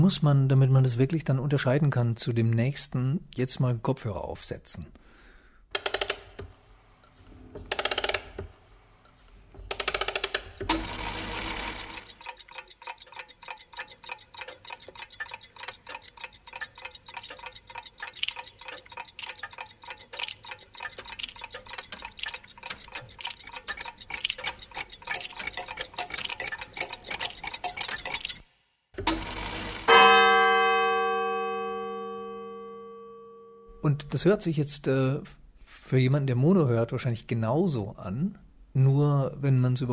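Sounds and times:
speech: 0:00.0 - 0:05.0, 0:34.2 - 0:39.9
clockwork mechanisms ticking densely and rapidly in stereo: 0:05.7 - 0:06.4, 0:07.7 - 0:08.4, 0:09.7 - 0:30.2
ringing tone: 0:29.9 - 0:33.9.

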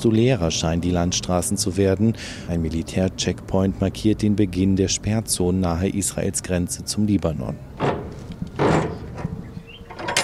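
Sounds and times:
speech: 0:00.0 - 0:08.0
shipping container doors swinging open: 0:07.7 - 0:10.2
fainter knocks: 0:07.8 - 0:10.2.

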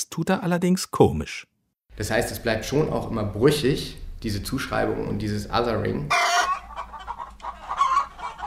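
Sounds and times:
speech: 0:00.0 - 0:06.3
chickens clucking: 0:06.1 - 0:08.4.

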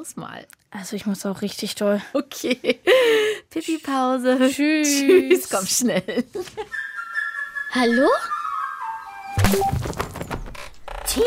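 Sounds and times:
speech: 0:00.0 - 0:06.9, 0:07.7 - 0:08.4, 0:09.3 - 0:10.0
water balloon thrown at someone in front of a house landing with a thud: 0:09.4 - 0:10.6.

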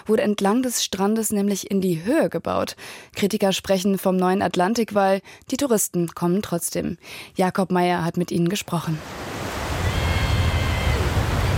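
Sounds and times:
speech: 0:00.0 - 0:09.6
sea swell and surf off a beach on the Belgian North Sea coast: 0:08.9 - 0:11.5.

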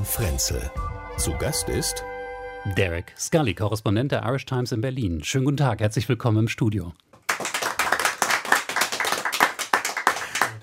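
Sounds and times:
speech: 0:00.0 - 0:07.1
live audience applause in a radio broadcast studio: 0:07.3 - 0:10.6.

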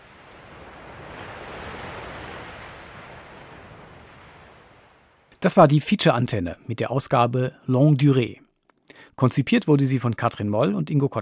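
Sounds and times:
ocean waves breaking on shore: 0:00.0 - 0:05.4
speech: 0:05.4 - 0:08.4, 0:09.0 - 0:11.1.

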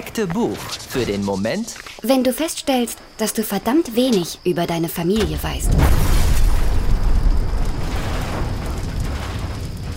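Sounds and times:
speech: 0:00.2 - 0:06.1
loud explosion: 0:05.5 - 0:09.9.

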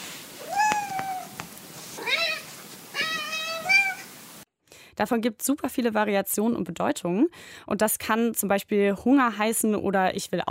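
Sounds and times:
cat meowing: 0:00.4 - 0:01.4, 0:02.0 - 0:04.2
speech: 0:05.0 - 0:10.4.

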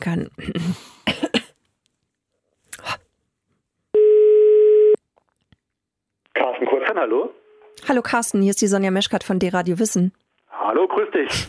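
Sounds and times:
speech: 0:00.0 - 0:00.9, 0:07.0 - 0:11.4
person coughing throatily: 0:00.4 - 0:01.6
telephone ringing tone through a handset during an outgoing call: 0:04.0 - 0:05.0.

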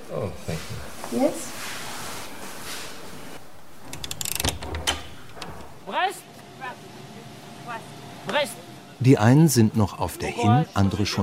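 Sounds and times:
speech: 0:00.1 - 0:01.8, 0:08.3 - 0:11.2
dormitory door latch clicks and rattles as door is eased open: 0:03.8 - 0:05.8.

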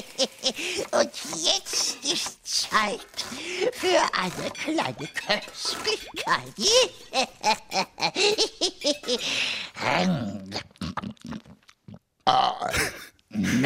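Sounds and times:
speech: 0:00.2 - 0:10.4
loud drawn-out burp after drinking juice: 0:10.0 - 0:13.6.

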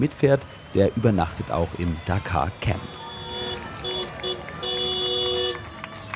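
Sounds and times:
speech: 0:00.0 - 0:03.0
noisy crowd of thousands of motorsport fans at a rally camp: 0:00.0 - 0:06.1
rally vehicles rumbling on an access road: 0:00.0 - 0:06.1
rally vehicle car horns honking: 0:02.6 - 0:05.8.

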